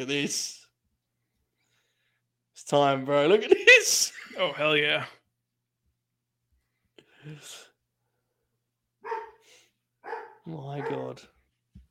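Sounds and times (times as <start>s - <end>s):
speech: 0.0s - 0.6s, 2.6s - 5.2s, 7.2s - 7.6s, 10.4s - 11.3s
dog barking: 9.0s - 11.2s.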